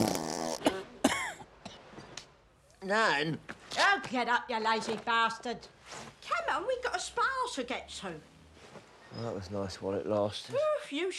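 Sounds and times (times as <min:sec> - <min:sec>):
elderly woman's fart: 0:00.0 - 0:00.7
speech: 0:02.9 - 0:08.3, 0:09.2 - 0:11.1.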